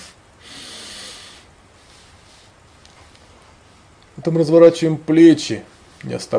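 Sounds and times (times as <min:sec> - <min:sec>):
deep belly breath drawn in through the nose: 0:00.0 - 0:02.6
speech: 0:04.2 - 0:06.3.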